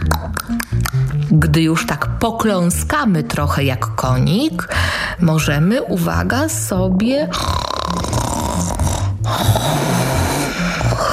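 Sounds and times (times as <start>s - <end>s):
speech: 0.5s - 8.2s
voice imitating snoring in a children's movement game: 7.2s - 11.1s.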